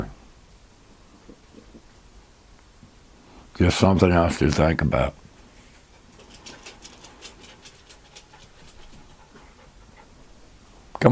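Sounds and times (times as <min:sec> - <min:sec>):
faint hiss: 0:00.0 - 0:11.0
speech: 0:03.6 - 0:05.2
dog panting: 0:06.0 - 0:10.6.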